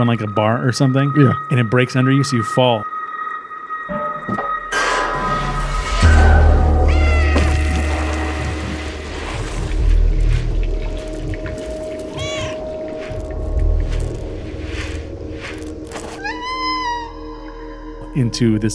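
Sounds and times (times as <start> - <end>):
speech: 0.0 - 3.0, 18.2 - 18.7
low rumbling hum: 4.2 - 18.4
cat meowing: 6.5 - 7.8, 12.1 - 12.6, 16.2 - 17.3.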